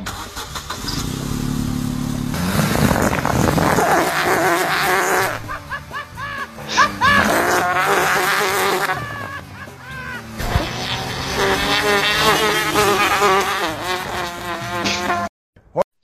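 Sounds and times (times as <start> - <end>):
old car exhaust blowing into extra-large bicycle inner tube: 0.0 - 5.6, 7.0 - 9.1, 10.3 - 15.3
old car engine starting and running: 0.0 - 14.8
laughter: 4.1 - 10.8.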